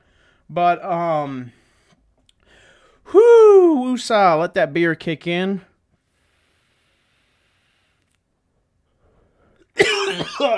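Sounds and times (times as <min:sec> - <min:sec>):
speech: 0:00.5 - 0:01.6, 0:03.1 - 0:05.7, 0:09.8 - 0:10.5
person coughing: 0:09.8 - 0:10.5.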